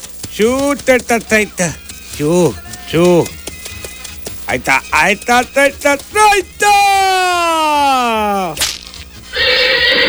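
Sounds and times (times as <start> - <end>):
speech: 0.4 - 3.4, 4.5 - 8.7
sharp crack: 8.5 - 8.9
horse neighing: 9.3 - 10.0.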